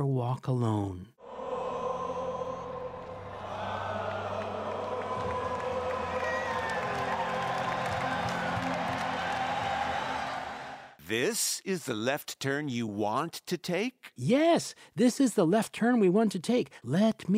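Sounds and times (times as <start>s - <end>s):
speech: 0.0s - 1.2s, 11.1s - 17.3s
huge concert crowd singing an anthem in unison: 1.2s - 10.9s.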